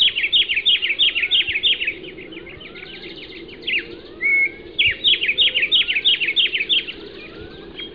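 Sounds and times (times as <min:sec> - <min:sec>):
bird singing high chirps: 0:00.0 - 0:07.9.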